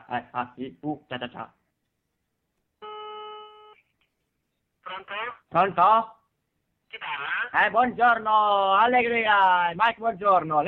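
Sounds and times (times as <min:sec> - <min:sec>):
speech: 0:00.1 - 0:01.6, 0:04.9 - 0:06.2, 0:06.9 - 0:10.6
telephone ringback tone while a call is being placed: 0:02.8 - 0:03.8.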